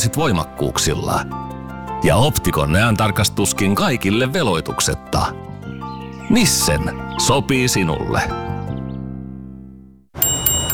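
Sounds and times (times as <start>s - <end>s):
speech: 0.0s - 5.5s, 6.3s - 8.5s
bright jingling bells: 10.2s - 10.7s
sustained ringing chime tone: 10.2s - 10.7s.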